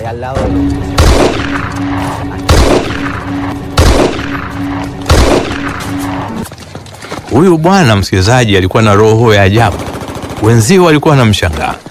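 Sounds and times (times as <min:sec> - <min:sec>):
speech: 0:00.1 - 0:02.5, 0:07.3 - 0:11.8
steady low rumble: 0:00.4 - 0:06.5
war-drama gunfire effect in the bush: 0:00.5 - 0:06.4.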